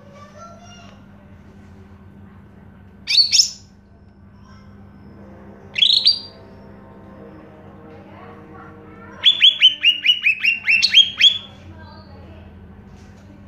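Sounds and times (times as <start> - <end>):
faint background hum: 0.0 - 13.4
Greater green leafbird singing: 3.1 - 3.7, 9.2 - 12.0.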